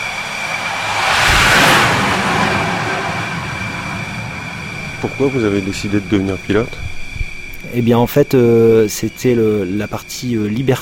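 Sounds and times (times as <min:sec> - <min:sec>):
loud continuous jet roar: 0:00.0 - 0:07.4
speech: 0:05.0 - 0:06.9, 0:07.7 - 0:10.8.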